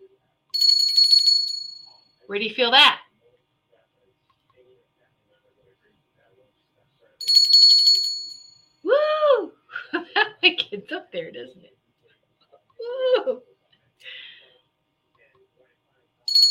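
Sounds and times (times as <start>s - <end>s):
small replica Liberty Bell handbell being shaken: 0.6s - 2.0s, 7.2s - 8.6s
speech: 2.3s - 3.0s
laughter: 9.7s - 10.9s, 12.8s - 13.5s.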